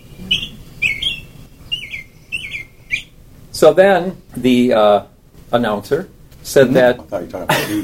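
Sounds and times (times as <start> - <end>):
American robin singing: 0.0 - 4.3
speech: 3.6 - 7.8.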